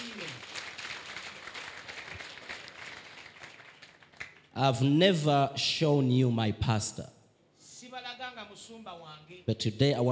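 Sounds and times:
crowd applause: 0:00.0 - 0:04.5
speech: 0:04.6 - 0:07.2, 0:08.7 - 0:10.1.

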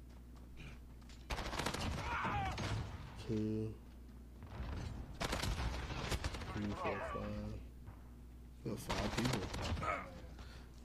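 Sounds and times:
low noise: 0:00.0 - 0:10.8
gunfire in a shooter video game: 0:01.3 - 0:03.2, 0:04.4 - 0:07.1, 0:08.8 - 0:10.2
speech: 0:03.3 - 0:03.8, 0:06.6 - 0:07.7, 0:08.6 - 0:10.3.

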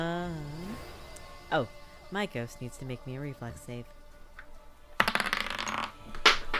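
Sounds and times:
speech: 0:01.5 - 0:04.0
dice clattering onto a hard table: 0:05.0 - 0:06.5.

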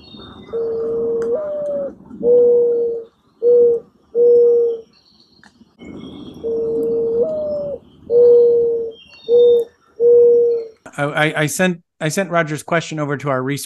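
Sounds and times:
mourning dove cooing: 0:00.0 - 0:05.0, 0:05.9 - 0:11.1
faint birds chirping: 0:00.0 - 0:13.6
speech: 0:11.1 - 0:13.6.

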